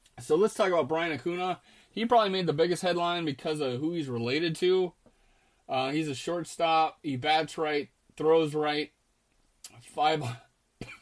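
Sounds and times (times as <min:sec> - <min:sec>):
speech: 0:00.3 - 0:05.0, 0:05.7 - 0:09.0, 0:09.7 - 0:10.4
person coughing with a throaty rasp: 0:10.2 - 0:11.0.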